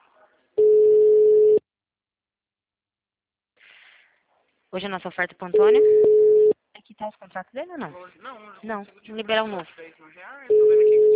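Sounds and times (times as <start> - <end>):
telephone ringback tone on an outgoing call: 0.6 - 1.6, 5.6 - 6.6, 10.5 - 11.1
speech: 4.7 - 6.1, 7.0 - 11.1.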